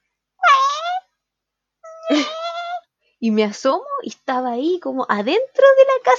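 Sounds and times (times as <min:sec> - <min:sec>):
voice imitating a tomcat caterwauling: 0:00.4 - 0:01.1, 0:01.8 - 0:02.8
speech: 0:03.2 - 0:06.1.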